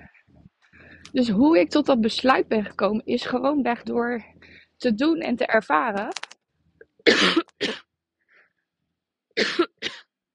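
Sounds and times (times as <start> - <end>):
speech: 1.1 - 6.2, 7.1 - 7.8
harsh raspy coughs from an irritated throat: 7.0 - 7.9, 9.4 - 10.1.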